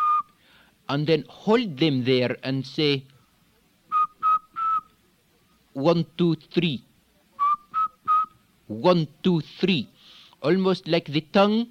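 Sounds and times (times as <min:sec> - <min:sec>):
person lip whistling high-pitched notes: 0:00.0 - 0:00.4, 0:03.9 - 0:04.9, 0:07.4 - 0:08.4
speech: 0:00.9 - 0:03.1, 0:05.8 - 0:06.9, 0:08.7 - 0:11.6.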